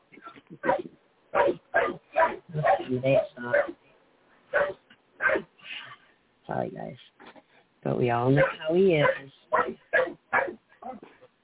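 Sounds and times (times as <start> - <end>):
dog barking: 0.6 - 3.8, 4.5 - 5.5, 8.4 - 11.0
speech: 2.9 - 3.8, 7.9 - 9.2.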